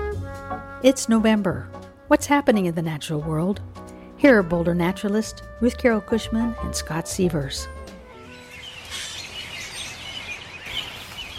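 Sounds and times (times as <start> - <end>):
speech: 0.8 - 7.8
flock of about forty robins chirping over Boulder Creek in Boulder: 8.3 - 11.3
rustling wash of robin wingbeats: 8.3 - 11.3.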